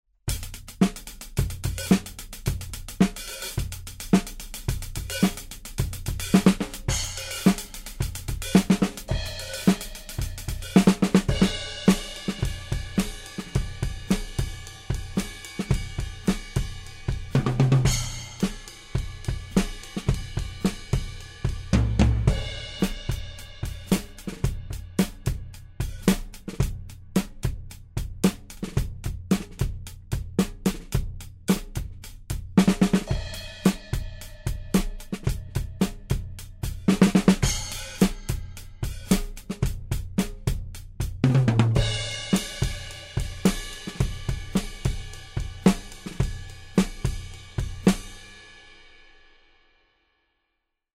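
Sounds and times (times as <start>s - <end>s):
drums recorded with overhead microphones: 0.2s - 49.7s.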